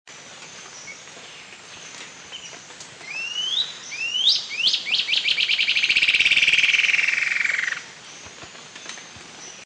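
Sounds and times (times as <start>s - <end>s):
faint hiss: 0.1s - 9.6s
bird song with rising whistled sweeps and even trill: 0.2s - 9.6s.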